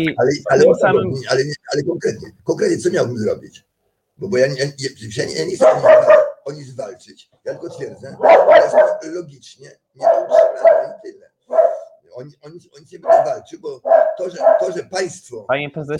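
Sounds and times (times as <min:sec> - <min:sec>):
speech: 0:00.0 - 0:15.9
dog barking in background: 0:05.6 - 0:06.5, 0:08.1 - 0:09.2, 0:10.0 - 0:12.0, 0:13.0 - 0:14.9.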